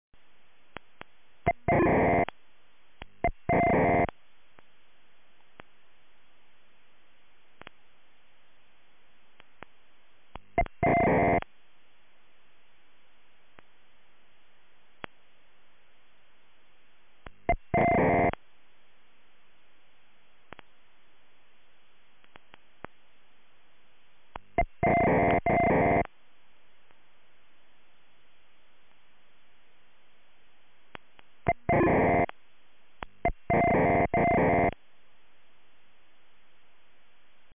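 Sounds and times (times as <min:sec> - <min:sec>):
strange radio sounds: 0:01.4 - 0:02.3, 0:03.2 - 0:04.1, 0:10.6 - 0:11.4, 0:17.5 - 0:18.4, 0:24.6 - 0:26.1, 0:31.5 - 0:32.3, 0:33.2 - 0:34.8.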